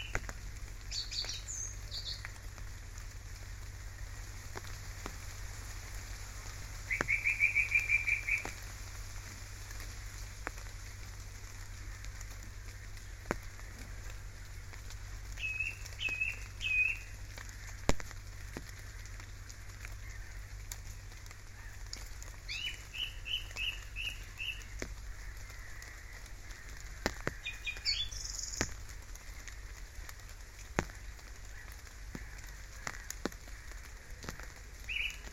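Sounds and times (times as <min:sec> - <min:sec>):
birds calling at Ranworth Broad in Norfolk: 0:00.0 - 0:04.8, 0:06.7 - 0:08.6, 0:11.5 - 0:35.3
light rain pattering at Ranworth Broad in Norfolk: 0:00.0 - 0:35.3
scattered drips and ticks of rain: 0:00.0 - 0:35.3.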